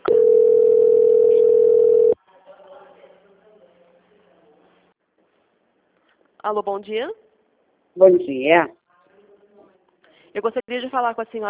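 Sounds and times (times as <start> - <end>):
telephone transfer tone during a bank call: 0.0 - 2.2
speech: 6.5 - 7.2, 8.0 - 8.8, 10.3 - 11.4.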